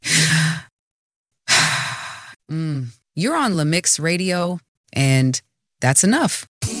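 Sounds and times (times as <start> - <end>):
deep breath drawn in and let out as a sigh: 0.0 - 0.7, 1.4 - 2.5
speech: 2.5 - 6.7.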